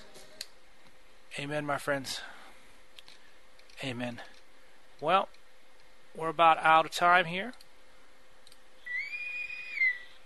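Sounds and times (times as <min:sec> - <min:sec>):
faint constant hum: 0:00.0 - 0:10.2
speech: 0:01.4 - 0:02.3, 0:03.8 - 0:04.4, 0:05.0 - 0:05.4, 0:06.2 - 0:07.6
high steady whistle signalling the end of a show: 0:08.8 - 0:10.2.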